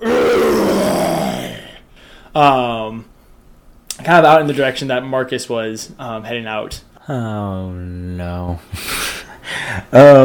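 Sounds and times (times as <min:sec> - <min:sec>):
person imitating a booming growling roar: 0:00.0 - 0:01.8
speech: 0:02.4 - 0:03.1, 0:04.0 - 0:10.2.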